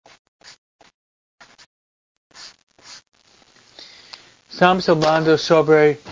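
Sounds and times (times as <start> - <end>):
scratchy writing on a surface during a religious talk: 0.1 - 1.7, 2.3 - 3.0
speech: 4.6 - 6.1.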